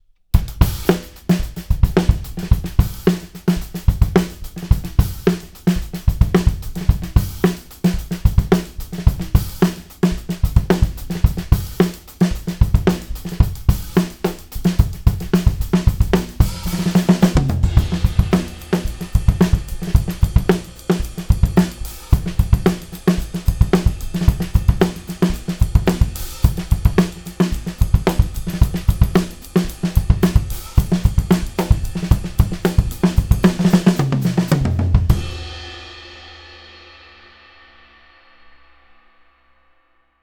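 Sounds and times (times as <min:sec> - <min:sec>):
full drum kit: 0:00.3 - 0:39.3.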